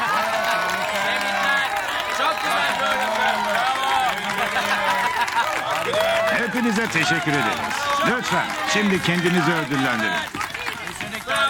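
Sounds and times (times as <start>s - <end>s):
crowd applauding: 0.0s - 11.4s
excited voices: 0.0s - 11.4s
laughter: 0.0s - 11.4s
scattered cheers: 0.0s - 11.4s
speech: 6.5s - 10.4s.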